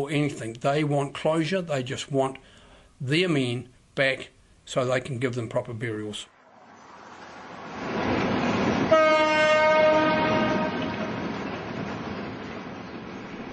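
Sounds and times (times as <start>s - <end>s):
speech: 0.0s - 6.3s
coal train rumbling past: 6.5s - 13.5s
coal train horn blast: 8.9s - 11.2s.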